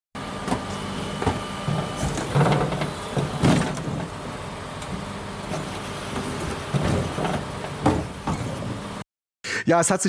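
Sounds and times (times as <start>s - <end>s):
garbage truck engine rumble: 0.2s - 9.0s
whine of garbage truck hydraulic machinery: 0.2s - 9.0s
bins clanking and thudding as they are lifted and emptied: 0.4s - 4.2s, 4.8s - 8.8s
speech: 9.6s - 10.0s.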